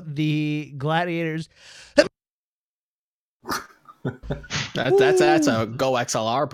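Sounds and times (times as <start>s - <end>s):
speech: 0.2s - 2.2s, 3.4s - 6.5s
sharp explosive sneezes: 4.6s - 5.6s.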